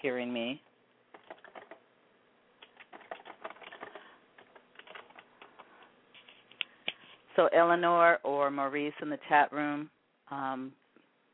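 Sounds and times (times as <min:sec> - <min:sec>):
speech: 0:00.0 - 0:00.7, 0:07.4 - 0:10.8
typing on a computer keyboard: 0:01.1 - 0:01.8, 0:02.6 - 0:05.7.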